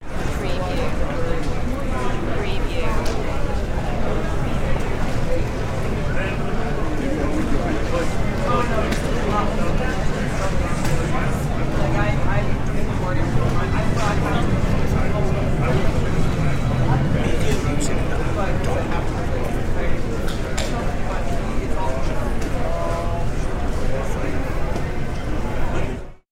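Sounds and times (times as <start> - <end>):
airport ambience: 0.0 - 26.2.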